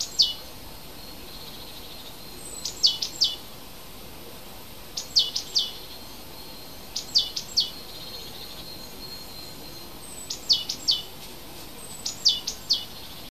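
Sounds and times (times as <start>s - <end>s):
native hedge bird song of high-pitched note clusters in February: 0.0s - 0.4s, 1.0s - 3.5s, 5.0s - 11.1s, 11.9s - 13.3s
soft background hiss: 0.0s - 13.3s.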